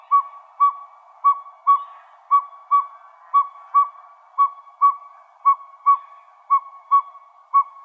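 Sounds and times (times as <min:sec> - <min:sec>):
Northern pygmy owl whistled toots in Arizona: 0:00.0 - 0:07.8.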